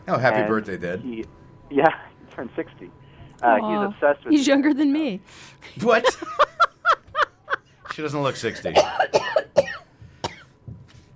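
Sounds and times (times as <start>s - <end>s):
speech: 0.1s - 6.4s, 8.0s - 9.8s
laughter: 6.0s - 8.5s
person coughing after laughing hard: 8.5s - 10.5s.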